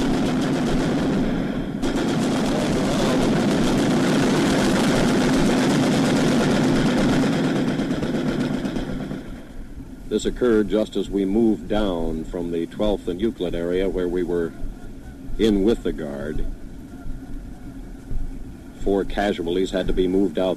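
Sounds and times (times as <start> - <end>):
heavy engine-like roar, possibly aircraft or helicopter: 0.0 - 9.7
rapid gunfire: 0.0 - 14.3
speech: 10.2 - 14.6, 15.4 - 16.6, 18.8 - 20.5.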